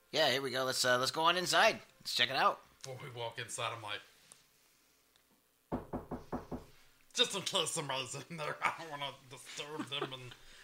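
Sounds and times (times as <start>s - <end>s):
speech: 0.1s - 4.1s, 7.2s - 10.6s
knocking on a metal door: 5.7s - 6.8s.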